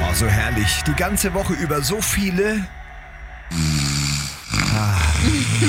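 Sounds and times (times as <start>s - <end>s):
speech: 0.2s - 2.8s
person snoring in phone voice message recordings: 3.5s - 5.6s.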